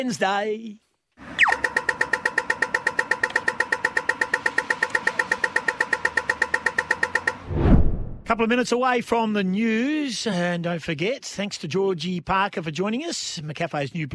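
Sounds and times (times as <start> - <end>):
speech: 0.0 - 0.8, 8.3 - 14.1
pedestrian crosswalk signal rapid bright ticks: 1.4 - 7.4.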